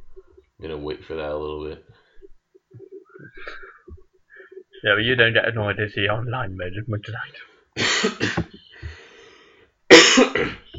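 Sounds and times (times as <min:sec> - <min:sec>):
speech: 0:00.6 - 0:02.0, 0:04.8 - 0:08.6
person coughing: 0:07.8 - 0:08.6, 0:09.9 - 0:10.7.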